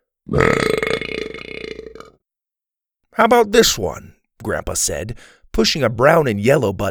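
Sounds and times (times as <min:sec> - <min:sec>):
speech: 0:00.3 - 0:00.8, 0:03.2 - 0:06.8
loud drawn-out rumbling belch: 0:00.3 - 0:02.2.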